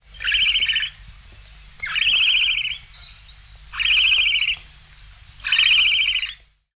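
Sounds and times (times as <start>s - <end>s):
bird rasping calls: 0.1s - 1.0s, 1.8s - 4.6s, 5.4s - 6.4s.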